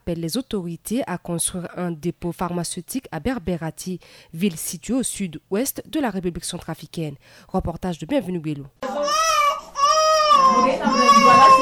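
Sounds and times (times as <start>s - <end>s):
speech: 0.1s - 9.0s
baby crying at a health centre in the Central African Republic: 8.8s - 11.6s.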